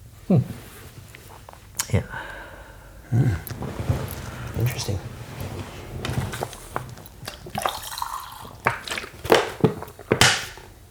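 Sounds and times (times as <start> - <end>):
speech: 0.3 - 0.6, 1.9 - 2.3, 3.1 - 3.5, 4.6 - 5.1
sipping water from a sippy bottle: 0.8 - 10.8.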